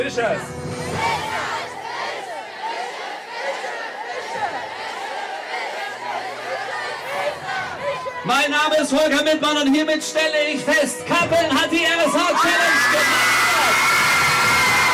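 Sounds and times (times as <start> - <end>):
speech: 0.0 - 1.4, 8.2 - 13.9
large crowd shouting a rapid German tongue twister in unison: 0.8 - 8.4, 11.9 - 14.9.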